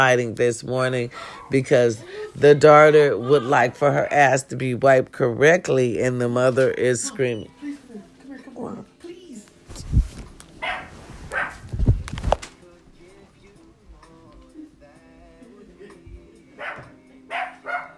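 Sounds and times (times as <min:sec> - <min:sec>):
speech: 0:00.0 - 0:07.6
dog barking in a bathtub: 0:10.6 - 0:11.6, 0:16.6 - 0:17.9.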